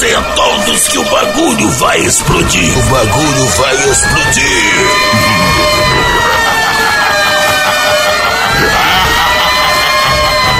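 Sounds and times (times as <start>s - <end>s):
speech: 0.0s - 6.1s
loud dense music in a live DJ set: 0.0s - 10.5s
siren effect during a live DJ set: 1.9s - 10.5s
laughter: 4.3s - 10.5s
crowd noise: 4.5s - 9.5s.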